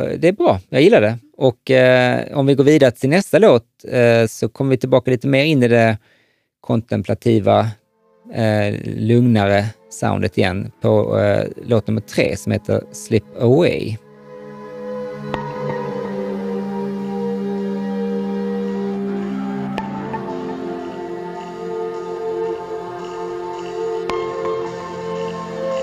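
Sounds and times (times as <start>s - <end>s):
speech: 0.0s - 14.0s
sustained wavering synth chords: 8.0s - 25.8s.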